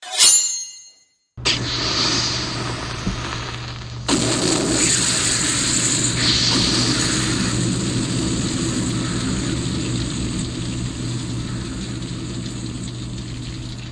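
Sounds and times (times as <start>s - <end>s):
flaming sword igniting: 1.4s - 13.9s.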